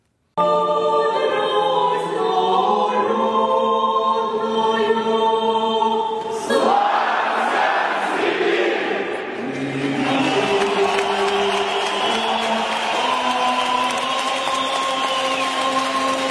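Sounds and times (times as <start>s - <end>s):
big hockey arena crowd singing the national anthem: 0.4s - 16.2s
sustained music: 9.2s - 16.2s.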